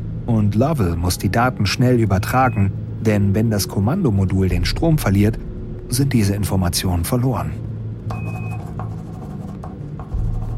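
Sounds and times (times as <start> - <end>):
constant low hum aboard a spacecraft: 0.0 - 10.5
speech: 0.3 - 8.4
pen strokes writing coordinates by hand aboard a spacecraft: 8.1 - 10.5.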